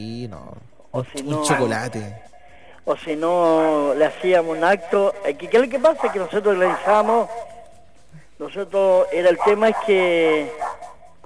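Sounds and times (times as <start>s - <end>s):
speech: 0.0s - 7.5s, 8.4s - 10.6s
small dog yapping in high-pitched bursts and whining bark: 5.8s - 7.7s, 9.2s - 11.2s.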